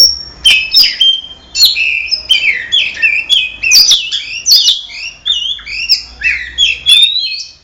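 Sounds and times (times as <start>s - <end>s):
Oriental magpie-robin singing: 0.0s - 7.6s.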